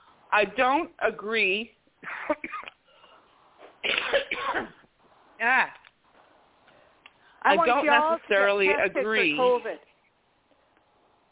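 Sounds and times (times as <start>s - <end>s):
speech: 0.3s - 2.5s, 5.4s - 5.8s, 7.4s - 9.9s
person coughing from allergies: 2.2s - 2.7s, 3.8s - 4.8s.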